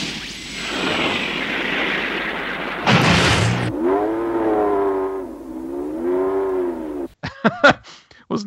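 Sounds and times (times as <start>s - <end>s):
sharp burst: 0.0s - 4.8s
rushing whooshing roar: 0.7s - 7.1s
car engine revving with a motorcycle-like whine: 2.9s - 7.2s
speech: 7.4s - 8.4s.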